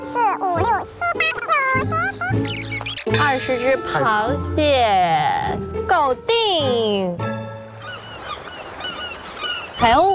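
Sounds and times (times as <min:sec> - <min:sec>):
seagulls calling at a sandy seaside beach: 0:00.4 - 0:03.2, 0:07.5 - 0:10.1
speech: 0:03.4 - 0:07.3, 0:09.8 - 0:10.1.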